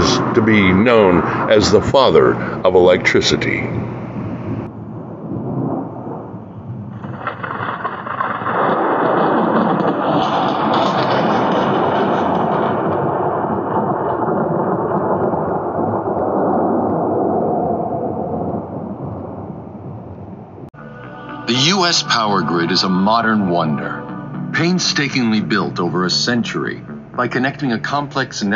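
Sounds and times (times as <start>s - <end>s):
deep rolling thunderclap: 0.0s - 20.8s
speech: 0.4s - 4.0s, 21.9s - 24.0s, 24.6s - 28.5s
heavy rain in a thunderstorm: 5.3s - 17.5s.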